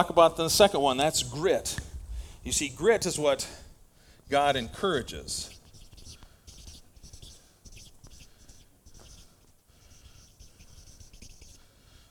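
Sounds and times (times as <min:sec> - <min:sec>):
speech: 0:00.0 - 0:03.6, 0:04.3 - 0:05.6
marker squeaking and scratching across paper: 0:04.8 - 0:11.7.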